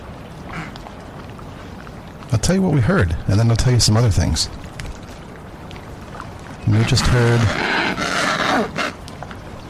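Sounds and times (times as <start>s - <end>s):
speech: 2.3s - 4.6s, 6.7s - 8.0s
Adélie penguin squawk: 6.9s - 9.0s.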